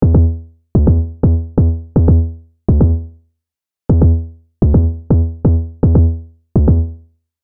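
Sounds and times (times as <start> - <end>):
kick bass: 0.0 - 3.2, 3.9 - 7.0.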